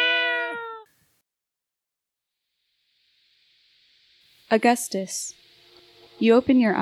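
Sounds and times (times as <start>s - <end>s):
person imitating a cat meow: 0.0s - 0.9s
speech: 4.5s - 5.4s, 6.2s - 6.8s.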